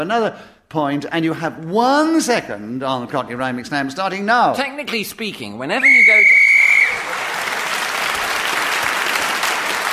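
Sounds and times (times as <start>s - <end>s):
speech: 0.0s - 6.4s
whistle blown to end a round of a game: 5.8s - 7.0s
audience applause: 6.3s - 9.9s.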